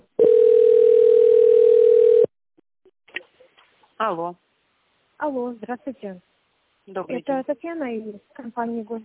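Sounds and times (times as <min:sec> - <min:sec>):
steady telephone line tone while a call is transferred: 0:00.2 - 0:02.3
speech: 0:05.3 - 0:06.3, 0:06.9 - 0:09.0.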